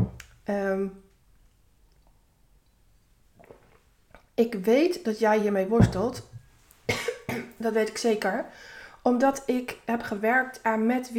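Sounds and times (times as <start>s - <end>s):
speech: 0.5s - 1.1s, 4.4s - 6.3s, 7.4s - 11.1s
sipping a drink: 1.9s - 4.3s
mouth and swallowing sounds: 3.3s - 4.3s.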